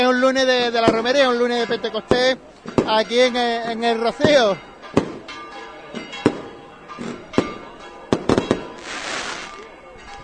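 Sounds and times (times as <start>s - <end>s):
faint murmur: 0.0s - 10.2s
speech: 0.1s - 4.7s
fireworks exploding outdoors: 6.2s - 9.7s
fireworks crackling hiss: 8.5s - 9.8s.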